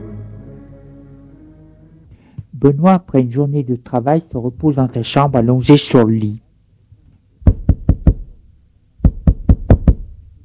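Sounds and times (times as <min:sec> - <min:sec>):
speech: 0:02.6 - 0:06.5
firm knocking on a door: 0:07.5 - 0:08.2, 0:09.0 - 0:10.1.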